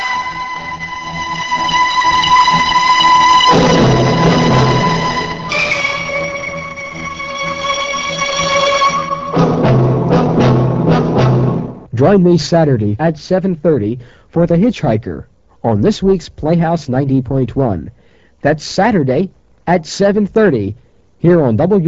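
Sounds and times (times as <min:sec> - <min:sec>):
train horn blaring: 0:00.0 - 0:11.6
approaching train rumbling: 0:03.4 - 0:06.2
speech: 0:12.0 - 0:21.8.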